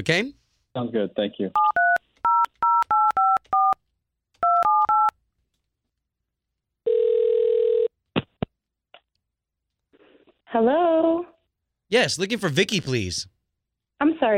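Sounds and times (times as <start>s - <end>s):
speech: 0.0s - 1.7s, 10.5s - 11.3s, 11.9s - 13.4s, 14.0s - 14.3s
telephone ringing tone: 1.6s - 3.8s, 4.4s - 5.1s, 6.8s - 7.9s.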